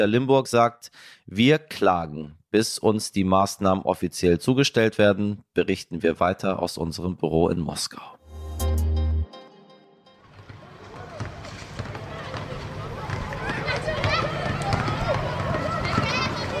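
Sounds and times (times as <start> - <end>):
speech: 0.0 - 8.7
many children shouting and chattering in a schoolyard: 12.0 - 16.5.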